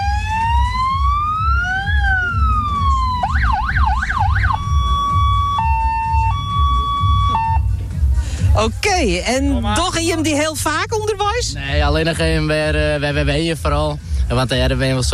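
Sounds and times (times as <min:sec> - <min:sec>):
loud electronic siren-like horn mounted on the back: 0:00.0 - 0:07.7
steady low rumble: 0:00.0 - 0:15.1
speech: 0:08.9 - 0:15.1.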